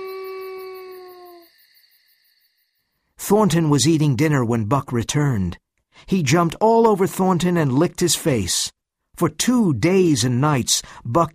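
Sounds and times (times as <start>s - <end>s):
wolf howling mournfully while sitting: 0.0s - 1.6s
speech: 3.3s - 11.3s.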